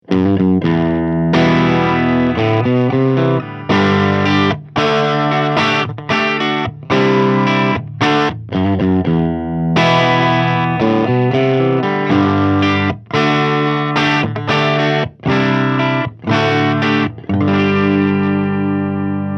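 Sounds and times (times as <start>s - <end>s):
clean single-coil electric guitar: 0.0s - 19.3s.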